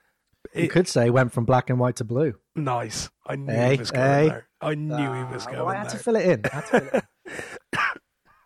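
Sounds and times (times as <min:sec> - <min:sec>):
speech: 0:00.4 - 0:07.6
laughter: 0:05.0 - 0:07.5
person coughing: 0:07.4 - 0:08.1.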